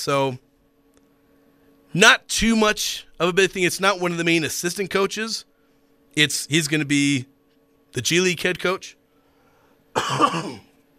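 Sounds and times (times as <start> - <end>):
speech: 0.0 - 0.5, 1.9 - 5.5, 6.1 - 7.3, 7.9 - 9.0, 10.0 - 10.7
faint hum: 0.0 - 10.9
raspy cough: 9.9 - 10.7.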